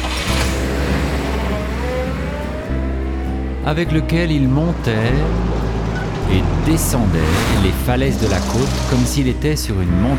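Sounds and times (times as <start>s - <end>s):
Alfa Romeo convertible car engine revving: 0.0s - 10.1s
speech: 3.7s - 5.6s, 6.3s - 10.1s.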